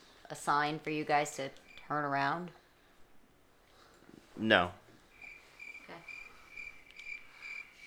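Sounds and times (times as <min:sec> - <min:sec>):
speech: 0:00.3 - 0:02.6, 0:04.4 - 0:04.8
crickets chirping: 0:05.1 - 0:07.8.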